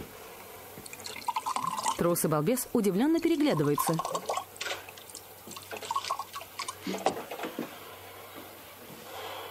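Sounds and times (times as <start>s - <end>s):
liquid pouring from a bottle tilted over a table: 0.8s - 2.1s, 3.2s - 7.2s
speech: 2.0s - 4.4s.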